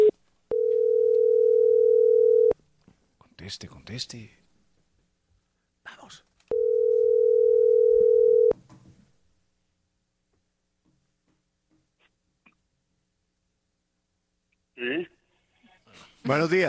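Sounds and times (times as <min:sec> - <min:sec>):
telephone dial tone: 0:00.0 - 0:02.6, 0:06.5 - 0:08.5
speech: 0:03.5 - 0:04.4, 0:16.3 - 0:16.6.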